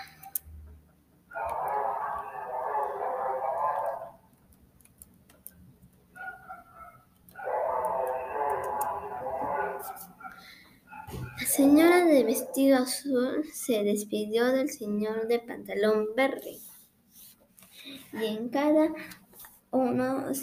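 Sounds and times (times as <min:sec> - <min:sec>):
dog howling: 0:01.3 - 0:04.2, 0:06.2 - 0:12.8
speech: 0:11.6 - 0:16.6, 0:18.2 - 0:20.4.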